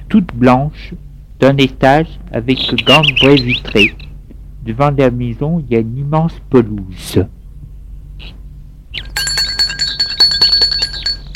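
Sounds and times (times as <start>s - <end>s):
speech: 0.1s - 4.0s, 4.6s - 7.4s
bell rung at the gate of a white one-storey lakeside villa: 9.0s - 11.3s.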